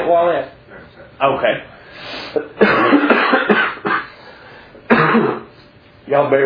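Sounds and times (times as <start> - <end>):
speech: 0.1 - 3.2, 6.1 - 6.4
harsh raspy coughs: 2.2 - 5.6.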